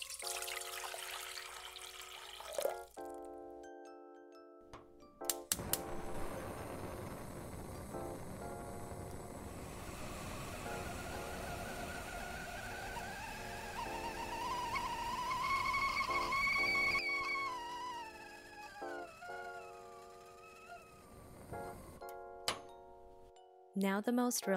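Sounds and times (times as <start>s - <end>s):
water boiling in a kettle: 0.0s - 2.9s, 5.5s - 22.0s
faint tonal background: 0.1s - 24.5s
thin rising whistle-like tone: 10.5s - 21.3s
speech: 23.8s - 24.5s.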